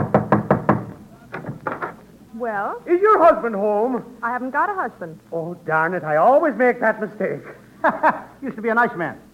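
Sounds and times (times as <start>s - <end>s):
knocking on a house door: 0.0s - 1.9s
speech: 2.4s - 9.3s
laughter: 7.4s - 8.4s.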